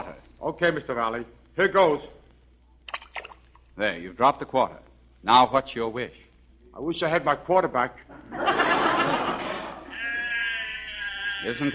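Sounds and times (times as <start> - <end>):
speech: 0.5 - 2.2, 3.8 - 6.2, 6.8 - 8.4, 11.4 - 11.7
laughter: 8.1 - 11.7
sheep bleating in a grazing flock: 9.9 - 11.7.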